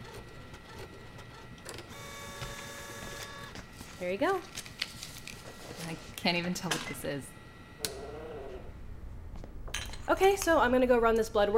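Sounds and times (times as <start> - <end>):
printer whirring and clicking as paper feeds: 0.0 - 3.8
speech: 4.0 - 4.6, 5.8 - 7.9, 10.1 - 11.5.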